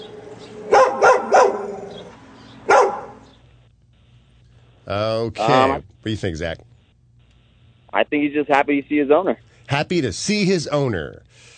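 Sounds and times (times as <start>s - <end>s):
dog barking: 0.7s - 3.3s
speech: 4.9s - 6.7s, 8.0s - 11.5s.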